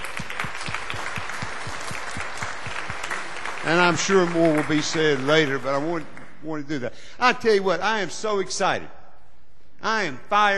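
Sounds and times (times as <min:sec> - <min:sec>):
audience applauding for graduates: 0:00.0 - 0:06.5
speech: 0:03.6 - 0:09.0, 0:09.8 - 0:10.5.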